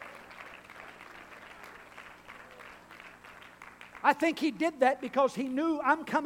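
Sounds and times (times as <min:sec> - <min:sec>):
congregation applauding loudly: 0:00.0 - 0:04.6
speech: 0:04.0 - 0:06.2.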